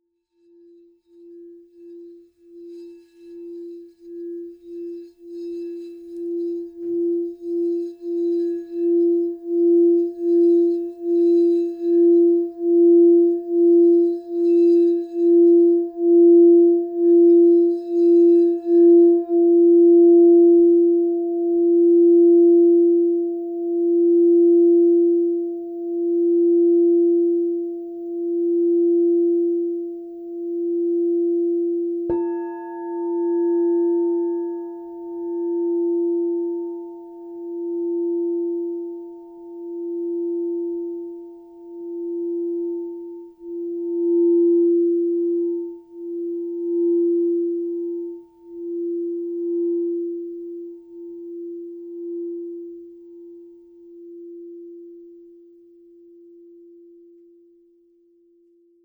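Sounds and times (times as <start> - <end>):
6.5 inch practitioner singing bowl in F: 0.2 - 58.8.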